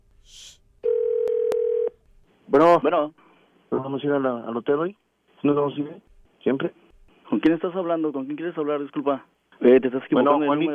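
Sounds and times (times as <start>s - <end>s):
short hiss on a telephone line: 0.1s - 0.7s
steady single-pitched telephone tone: 0.8s - 2.0s
speech: 2.5s - 10.7s.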